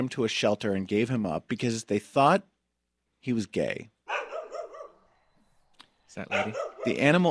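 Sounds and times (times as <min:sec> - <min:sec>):
speech: 0:00.0 - 0:02.5, 0:03.2 - 0:04.0, 0:06.1 - 0:07.2
dog bark drawn out into wavering yelping howl: 0:04.1 - 0:05.1, 0:06.3 - 0:07.2.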